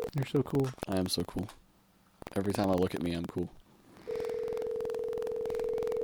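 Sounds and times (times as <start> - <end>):
faint rhythmic clicking: 0.0 - 6.0
speech: 0.1 - 1.6, 2.2 - 3.6
outgoing phone call ringing tone: 4.0 - 6.0.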